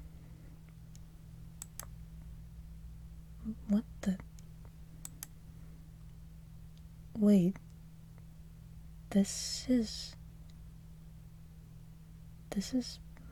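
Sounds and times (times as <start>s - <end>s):
low steady hum: 0.0s - 13.3s
computer mouse and keyboard clicks: 1.6s - 1.9s, 5.0s - 5.4s
speech: 3.5s - 4.3s, 7.2s - 7.6s, 9.2s - 10.2s, 12.6s - 13.0s.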